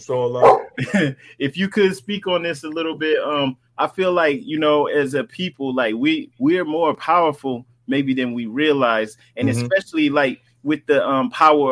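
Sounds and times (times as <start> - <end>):
speech: 0.0 - 11.7
dog bark: 0.4 - 0.8
person laughing: 0.8 - 1.6, 9.4 - 9.8.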